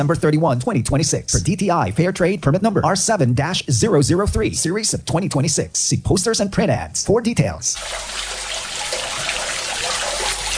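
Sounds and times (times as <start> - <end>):
speech: 0.0 - 8.4
water pouring and trickling into a street drain: 7.8 - 10.5.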